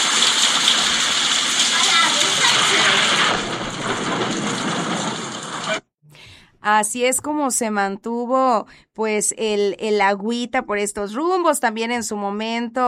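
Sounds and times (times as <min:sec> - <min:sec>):
heavy rain: 0:00.0 - 0:05.8
speech: 0:06.6 - 0:12.8.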